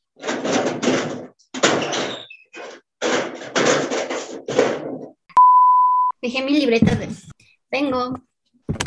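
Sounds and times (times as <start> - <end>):
door being handled, scraping and rattling: 0.0 - 5.2
steady loud electronic beep: 5.4 - 6.2
speech: 6.3 - 8.3.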